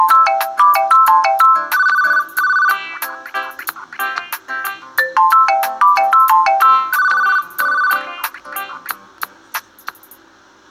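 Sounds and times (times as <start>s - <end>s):
original phone ringtone with chirrupy call: 0.0s - 3.1s, 5.0s - 8.3s.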